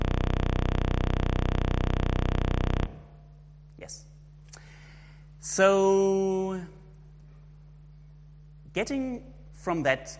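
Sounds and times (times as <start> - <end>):
31.25-hertz sawtooth wave from a program looping a 256-byte output: 0.0 - 3.2
speech: 3.8 - 4.1, 5.4 - 6.8, 8.8 - 10.1.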